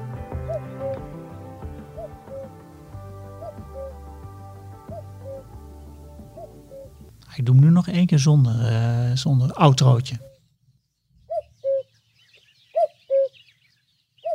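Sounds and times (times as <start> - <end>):
common cuckoo two-note call: 0.0 - 2.6, 3.4 - 4.0, 4.8 - 5.5, 6.4 - 6.9, 11.3 - 11.9, 12.8 - 13.4
sustained instrumental music with a low droning bass: 0.0 - 7.3
speech: 7.4 - 10.3.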